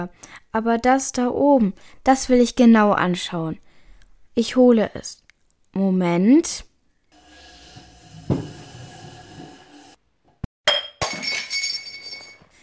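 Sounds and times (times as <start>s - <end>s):
speech: 0.0s - 3.6s, 4.4s - 6.7s
small glass bottle clattering and rattling: 10.7s - 12.5s
glass shards tinkling and scattering: 11.0s - 12.5s.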